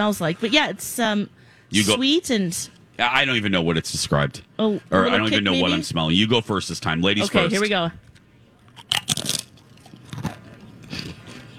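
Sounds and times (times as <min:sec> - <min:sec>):
speech: 0:00.0 - 0:08.0
crunching on tamarind-flavored tortilla chips: 0:08.7 - 0:11.4.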